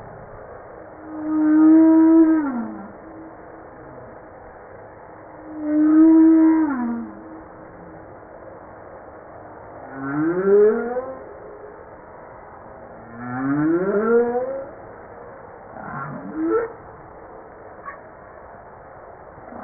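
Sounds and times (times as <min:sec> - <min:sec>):
Humpback whale song moans: 0:00.9 - 0:08.2, 0:09.7 - 0:11.8, 0:12.9 - 0:14.9, 0:15.7 - 0:18.0.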